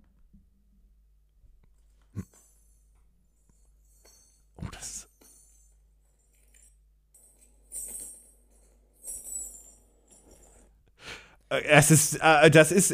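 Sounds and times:
small musical die rattling with a bright tinkle when rolled: 1.9s - 10.8s
speech: 11.5s - 12.9s.

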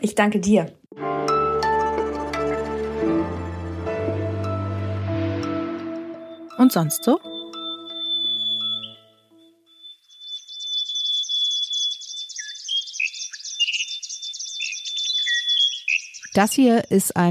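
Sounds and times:
speech: 0.0s - 0.8s, 6.6s - 7.3s, 16.4s - 17.3s
low tonal hum: 1.4s - 9.6s
chorus of Australian bird calls: 7.2s - 9.1s, 9.7s - 16.8s.

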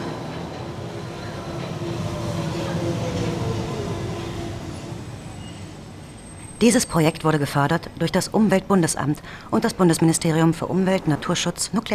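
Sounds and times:
train pulling into station platform: 0.0s - 8.7s
faint metallic squeal from train wheels slowing: 5.2s - 7.2s
speech: 6.6s - 11.9s.

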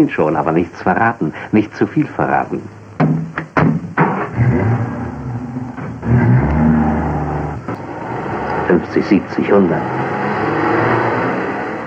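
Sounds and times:
speech: 0.0s - 3.2s, 8.7s - 10.0s
new Opel Kapitän car engine accelerating through gear changes: 4.0s - 11.8s.

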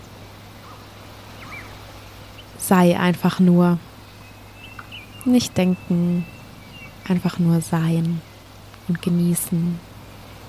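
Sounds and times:
bird chirps: 0.0s - 9.9s
steady low hum: 0.0s - 10.4s
speech: 2.6s - 3.9s, 5.2s - 6.4s, 7.1s - 8.3s, 8.9s - 9.9s.

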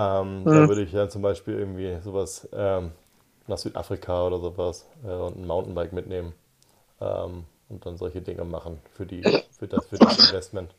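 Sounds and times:
speech: 0.0s - 6.4s, 7.0s - 10.7s
man sneezing: 9.3s - 10.4s.

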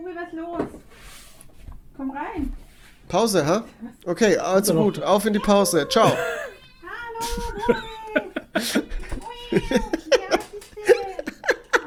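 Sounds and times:
speech: 0.2s - 1.2s, 2.0s - 6.4s, 7.2s - 7.8s
male pet cat meowing at home: 5.4s - 8.2s
people laughing: 5.8s - 11.8s.

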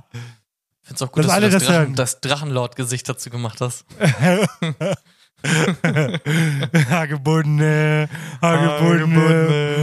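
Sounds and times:
speech: 1.0s - 9.8s
laughter: 4.0s - 7.1s
voice imitating a powerful wall drill: 8.4s - 9.8s.

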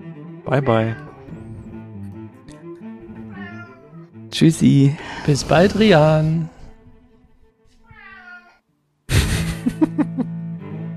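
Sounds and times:
speech: 0.5s - 1.1s, 4.3s - 6.5s
person imitating a cat meowing: 0.5s - 1.6s, 3.0s - 4.0s, 7.9s - 8.6s
laughter: 9.1s - 10.3s.

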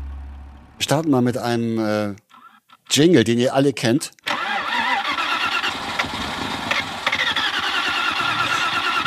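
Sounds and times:
speech: 0.9s - 2.2s, 2.9s - 4.2s
car engine cranking but failing to start: 4.3s - 9.0s.

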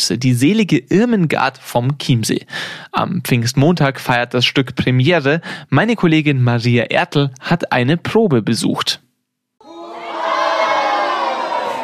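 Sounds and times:
speech: 0.0s - 9.0s
crowd cheering and shouting in welcome: 9.6s - 11.8s.

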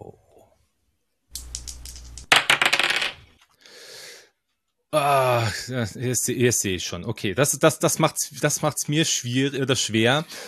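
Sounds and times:
dice clattering across a hard table: 1.4s - 3.5s
speech: 4.9s - 10.4s.

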